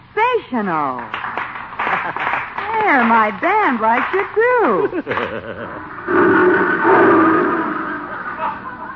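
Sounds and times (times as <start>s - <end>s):
speech: 0.4s - 1.2s, 2.0s - 7.6s
laughter: 1.8s - 3.4s, 4.0s - 6.1s, 8.1s - 8.9s
big lion roaring: 5.8s - 8.9s.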